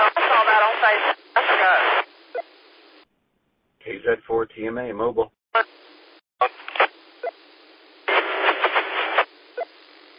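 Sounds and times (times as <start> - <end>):
scratchy ham radio transmission through repeater: 0.0 - 3.0, 5.6 - 10.1
speech: 0.8 - 2.1, 4.0 - 5.8.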